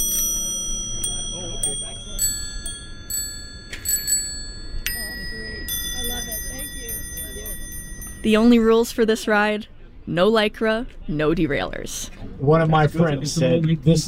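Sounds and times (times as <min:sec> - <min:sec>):
old-fashioned bicycle bells ringing: 0:00.0 - 0:09.0
murmur of people chatting: 0:00.0 - 0:14.0
speech: 0:08.2 - 0:14.0.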